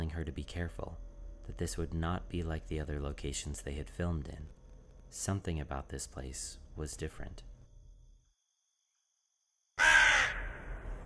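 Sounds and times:
speech: 0.2 - 7.5
crow cawing with echo across open space: 9.8 - 10.8.

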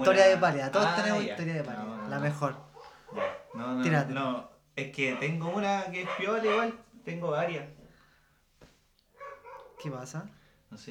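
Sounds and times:
speech: 0.0 - 7.8, 9.8 - 10.8
dogs barking: 1.0 - 4.0, 5.0 - 6.8, 9.1 - 10.0.

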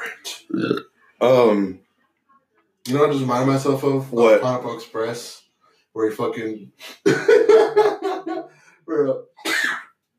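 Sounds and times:
speech: 0.6 - 1.8, 2.8 - 5.4, 6.0 - 7.9, 8.9 - 9.3
person laughing: 6.8 - 8.6
sharp hissy sneeze: 9.4 - 10.0.

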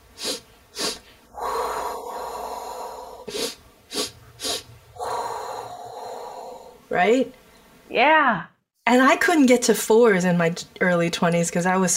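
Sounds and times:
long steady exhale: 0.2 - 6.8
quick sharp nasal sniffs: 0.2 - 6.8
speech: 6.9 - 11.9.

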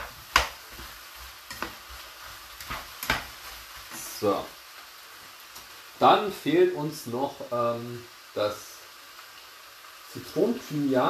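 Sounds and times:
utensil stirring and scraping against a frying pan: 0.0 - 4.1
food sizzling in a frying pan: 0.0 - 11.0
speech: 4.2 - 4.6, 6.0 - 8.7, 10.1 - 11.0.

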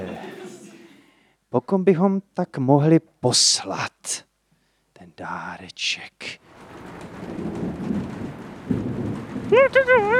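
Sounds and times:
laughter: 0.0 - 1.1
speech: 1.5 - 4.3, 5.0 - 7.5, 9.5 - 10.1
steady rain falling: 6.3 - 10.1.

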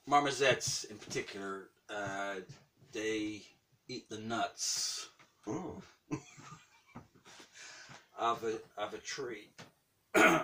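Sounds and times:
speech: 0.1 - 6.6, 8.2 - 10.4
person recovering from tonsillitis coughing: 5.5 - 6.0, 10.2 - 10.4.

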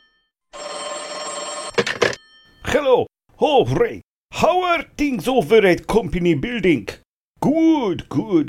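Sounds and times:
office telephone ringing with electronic trill: 0.0 - 2.8
speech: 2.7 - 8.4.

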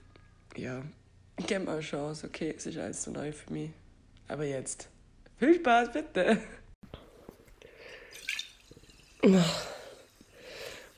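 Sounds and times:
speech: 0.6 - 6.6, 9.2 - 9.7
small water drips and watery clicks: 7.4 - 10.9
water splash or gush: 7.8 - 10.9.

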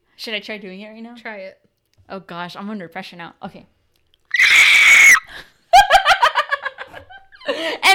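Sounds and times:
speech: 0.2 - 3.8, 7.6 - 7.9
person screeching imitating a pterodactyl: 4.3 - 5.3.

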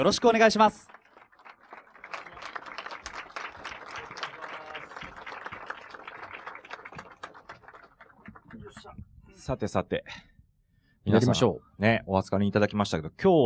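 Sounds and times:
speech: 0.0 - 1.0, 9.5 - 10.2, 11.1 - 13.4
audience applause welcoming speakers onto the stage: 0.0 - 9.0.

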